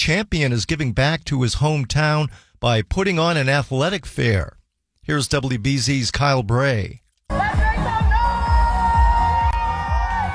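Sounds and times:
speech: 0.0 - 7.9
crowd cheering and shouting in a cheer tunnel at an athletic fair: 7.3 - 10.3
rhythmic clapping or stomping: 7.3 - 10.3.

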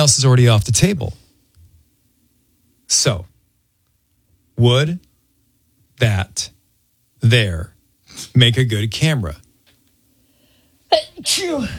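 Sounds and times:
speech: 0.0 - 1.2, 2.9 - 3.3, 4.6 - 5.0, 6.0 - 6.5, 7.2 - 9.4, 10.9 - 11.7
person sneezing: 10.9 - 11.7.

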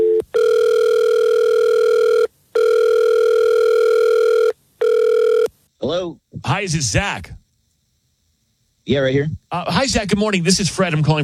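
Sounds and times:
phone line ringing on an outgoing call: 0.0 - 5.5
speech: 6.6 - 7.4, 8.9 - 11.2.

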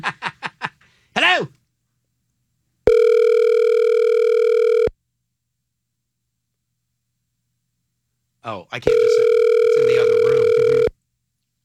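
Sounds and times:
electronic ringback tone of an outgoing phone call: 2.9 - 4.9, 8.9 - 10.9
speech: 8.8 - 9.2.

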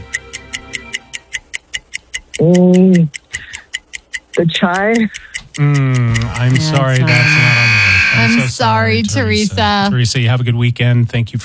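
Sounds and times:
countdown clock ticking: 0.0 - 9.9
speech: 2.4 - 3.6, 4.4 - 7.5, 8.2 - 11.4
loud low electronic buzzer: 6.8 - 8.6.

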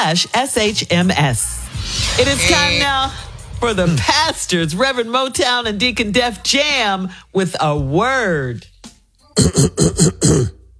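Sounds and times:
speech: 0.1 - 8.7, 9.4 - 10.6
rough throat clearing: 9.4 - 10.7.

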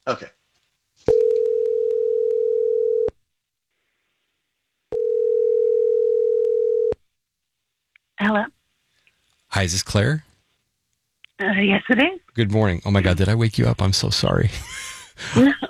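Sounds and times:
speech: 0.1 - 0.4, 9.6 - 10.3, 11.4 - 15.6
phone line ringback tone for an outgoing call: 1.1 - 3.1, 4.9 - 7.0.

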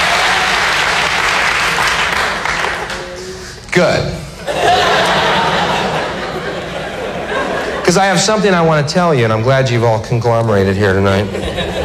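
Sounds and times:
crowd clapping: 0.0 - 3.6
speech: 3.8 - 4.2, 7.9 - 11.6
laughter: 4.3 - 8.5, 11.1 - 11.8.

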